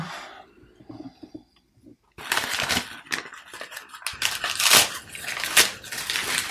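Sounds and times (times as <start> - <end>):
gift wrapping paper being roughly torn off and crumpled: 2.2 - 6.4.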